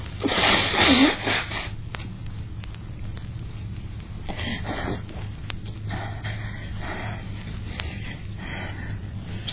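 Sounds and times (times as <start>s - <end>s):
person sneezing: 0.2s - 1.7s
quiet breathing: 4.2s - 9.5s.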